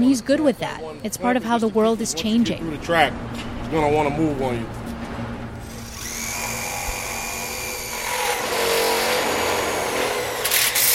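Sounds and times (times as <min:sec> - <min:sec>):
speech: 0:00.0 - 0:04.8
power drill grinding through the metal of a wall on a job site: 0:05.6 - 0:10.9.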